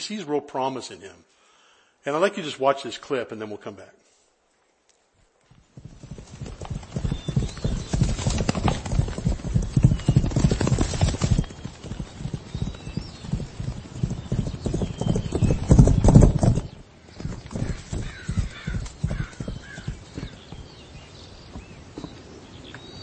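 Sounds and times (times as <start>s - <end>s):
speech: 0.0s - 1.4s, 2.0s - 4.1s
older banged-up mistreated horse hooves galloping: 5.5s - 22.9s.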